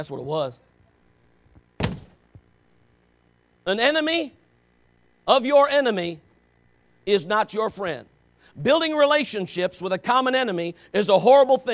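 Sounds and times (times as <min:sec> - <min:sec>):
speech: 0:00.0 - 0:00.7, 0:03.6 - 0:04.4, 0:05.3 - 0:06.2, 0:07.1 - 0:11.7
door shutting thud: 0:01.8 - 0:02.2.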